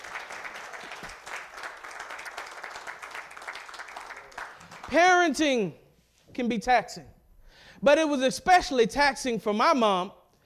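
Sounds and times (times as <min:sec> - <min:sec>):
audience applauding: 0:00.0 - 0:05.0
speech: 0:04.9 - 0:05.8, 0:06.4 - 0:07.2, 0:07.8 - 0:10.2.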